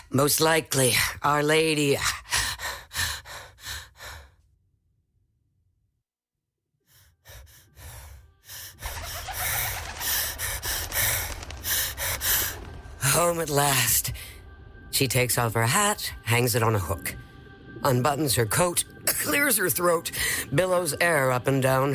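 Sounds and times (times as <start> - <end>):
speech: 0.1 - 2.4, 13.4 - 14.2, 15.0 - 21.9
person panting in quick short breaths: 2.0 - 4.4, 6.9 - 12.8.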